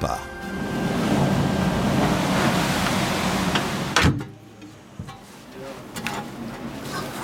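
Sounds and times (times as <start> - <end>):
roar of wind and surf: 0.2 - 4.1.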